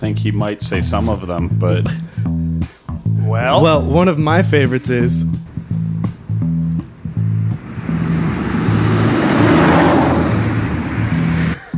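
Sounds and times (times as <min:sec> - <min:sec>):
speech: 0:00.0 - 0:02.4, 0:03.3 - 0:05.4
low steady engine hum: 0:05.3 - 0:11.7
car passing: 0:05.4 - 0:11.7.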